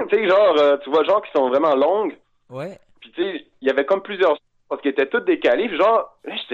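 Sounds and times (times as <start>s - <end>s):
speech: 0.1s - 6.5s
person's voice imitating a wailing nuclear alert siren: 2.5s - 2.8s.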